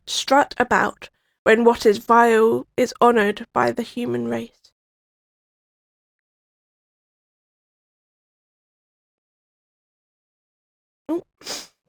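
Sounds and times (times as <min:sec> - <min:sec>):
speech: 0:00.3 - 0:04.6, 0:11.1 - 0:11.6
person sneezing: 0:11.1 - 0:11.8.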